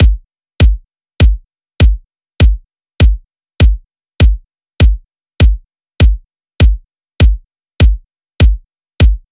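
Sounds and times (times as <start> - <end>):
Latin kick drum loop: 0.0 - 9.3.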